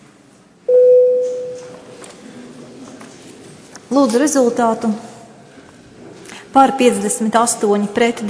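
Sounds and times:
parliamentary voting electronic bell tone: 0:00.7 - 0:01.6
faint room murmur: 0:01.3 - 0:08.2
speech: 0:03.9 - 0:05.1, 0:06.6 - 0:08.2.

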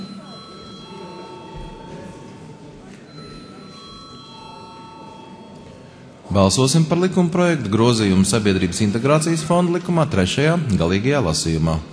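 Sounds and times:
parliament chamber electric bell ringing: 0:00.0 - 0:06.1
noisy background in a parliament chamber: 0:00.0 - 0:11.9
speech: 0:06.4 - 0:11.9.

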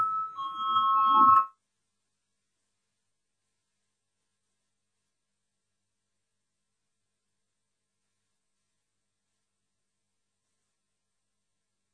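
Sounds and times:
bell rung in a legislative session to call a vote: 0:00.0 - 0:01.5.

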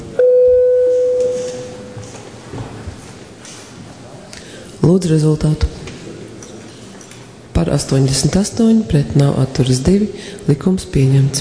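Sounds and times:
parliament voting bell electronic tone: 0:00.2 - 0:02.0
speech: 0:04.9 - 0:05.8, 0:07.6 - 0:11.3.

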